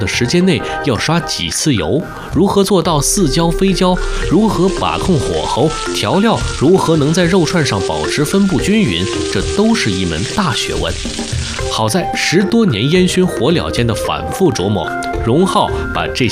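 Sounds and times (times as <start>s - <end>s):
several people talking: 0.0s - 11.0s, 11.6s - 16.2s
meat skewers sizzling on a charcoal grill: 3.0s - 12.6s.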